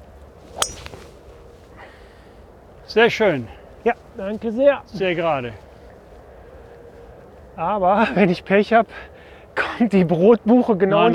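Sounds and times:
historic golf club striking a ball: 0.5 - 1.3
speech: 2.9 - 5.7, 7.6 - 11.1.

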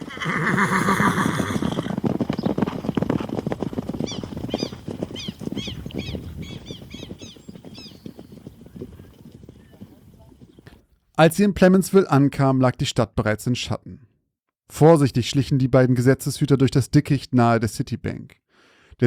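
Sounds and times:
horse hooves clip-clopping: 0.0 - 10.8
horses neighing as riders mount up: 0.0 - 10.8
speech: 0.2 - 1.0, 11.2 - 14.0, 14.7 - 18.4.

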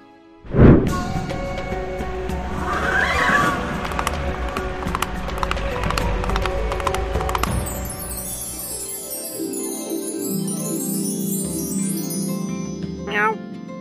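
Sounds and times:
soft tonal music: 0.0 - 13.7
horse galloping past: 2.5 - 8.0
horse whinnying neigh: 2.6 - 3.8.

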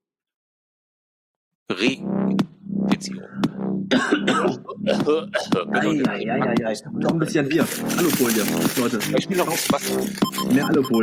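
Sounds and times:
speech: 1.7 - 11.0
man coughing: 3.9 - 5.0
man clearing his throat: 3.9 - 5.1.

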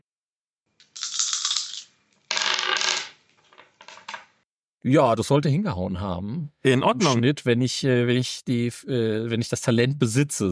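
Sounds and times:
dice rattling across a hard surface: 0.8 - 4.3
speech: 4.8 - 10.5.

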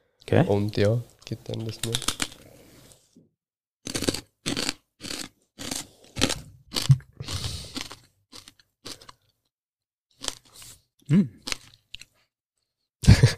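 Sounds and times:
speech: 0.3 - 2.2, 11.1 - 11.4
person chewing a crunchy deep-fried snack of lentils, white flour and spices: 3.8 - 9.5, 10.1 - 12.3.

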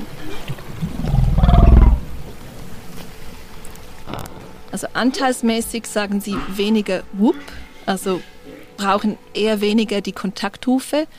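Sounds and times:
deep rumbling whale call underwater: 0.8 - 2.4
speech: 4.8 - 11.1.

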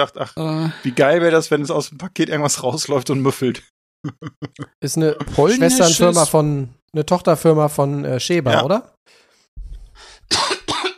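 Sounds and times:
speech: 0.0 - 9.2
laughter: 4.0 - 6.2
person coughing: 10.3 - 10.9.

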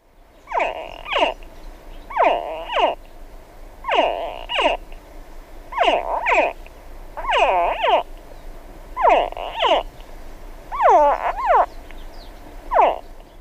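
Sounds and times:
hatchling crocodiles ready to hatch giving shrill grunting chirps: 0.4 - 3.0, 3.8 - 5.0, 5.7 - 8.1, 9.0 - 10.0, 10.7 - 13.3.

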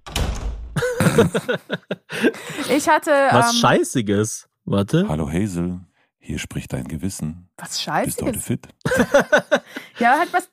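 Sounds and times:
door slamming shut with a heavy booming thud: 0.0 - 1.3
laughter: 0.8 - 4.9, 8.2 - 10.5
speech: 1.2 - 10.5.

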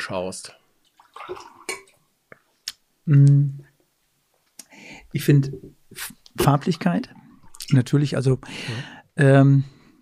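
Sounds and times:
speech: 0.0 - 0.6, 1.2 - 1.6, 3.1 - 3.7, 5.1 - 9.8
water splashing and gurgling as poured into glasses: 0.9 - 2.0
sharp bright clinks of glassware: 1.6 - 1.9.

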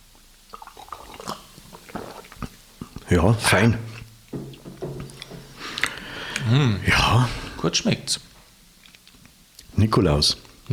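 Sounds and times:
person sipping Christmas punch: 0.5 - 6.8
speech: 3.1 - 3.9, 6.5 - 8.3, 9.8 - 10.7.

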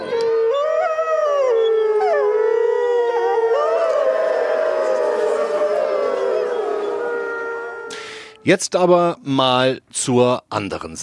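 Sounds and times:
people howling: 0.0 - 8.1
speech: 8.4 - 11.0.

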